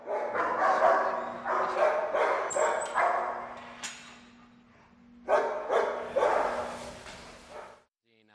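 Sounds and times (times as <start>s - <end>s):
several dogs barking in an echoing enclosed kennel: 0.0s - 3.6s, 5.2s - 6.8s, 7.5s - 7.9s
steady low mechanical hum: 0.4s - 7.6s.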